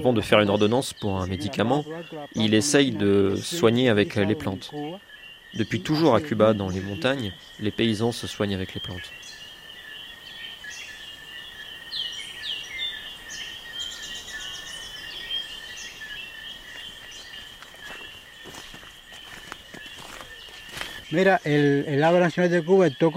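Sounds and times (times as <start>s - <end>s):
speech: 0.0s - 9.2s, 21.1s - 23.1s
birds chirping and whistling in a Cuban park: 0.0s - 23.1s
steady high insect drone: 0.0s - 23.1s
soft thuds like footsteps: 17.3s - 21.1s.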